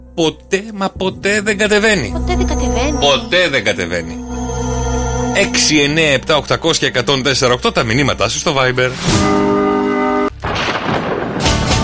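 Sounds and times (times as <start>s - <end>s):
sustained tonal chord: 0.0s - 10.3s
speech: 0.2s - 4.2s, 5.4s - 9.6s
loud rolling thunder with crackling bursts in a thunderstorm: 1.0s - 2.2s, 10.4s - 11.8s.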